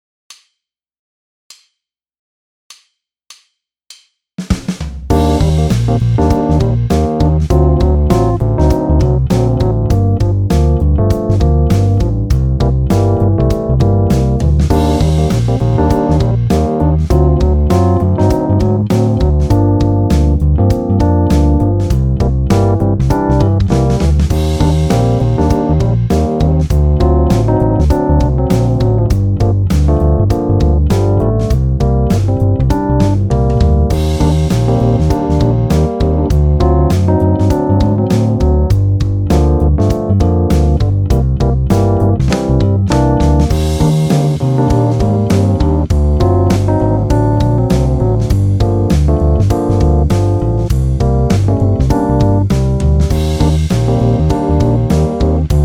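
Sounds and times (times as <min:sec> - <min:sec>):
cyclic chord: 0:05.1 - 0:55.6.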